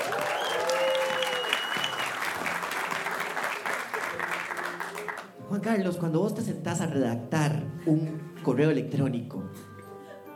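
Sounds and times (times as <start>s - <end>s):
faint cheers or calls: 0.0s - 2.1s
crowd clapping: 0.0s - 5.4s
speech: 5.5s - 9.7s.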